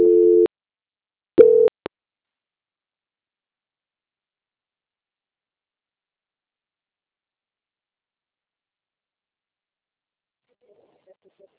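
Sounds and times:
telephone line tones during a call transfer: 0.0s - 0.5s, 1.4s - 1.7s.

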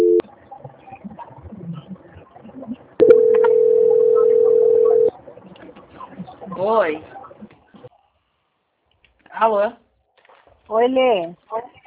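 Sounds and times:
telephone tone during a call transfer: 0.0s - 0.2s, 3.0s - 5.1s
faint noise: 0.0s - 11.8s
speech: 6.6s - 7.2s, 9.4s - 9.8s, 10.7s - 11.7s.

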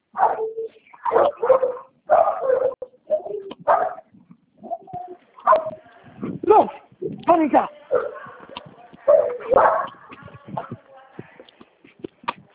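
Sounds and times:
dogs barking inside a house: 0.1s - 5.8s, 7.9s - 10.8s
speech: 7.4s - 7.8s.

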